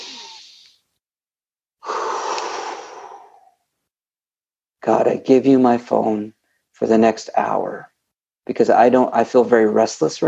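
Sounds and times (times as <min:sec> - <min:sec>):
deep breath in: 0:01.8 - 0:03.6
speech: 0:04.8 - 0:07.9, 0:08.5 - 0:10.2.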